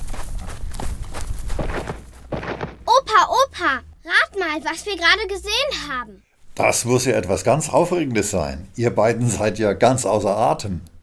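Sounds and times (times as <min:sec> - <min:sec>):
children running in sand: 0:00.0 - 0:03.6
speech: 0:03.6 - 0:10.9.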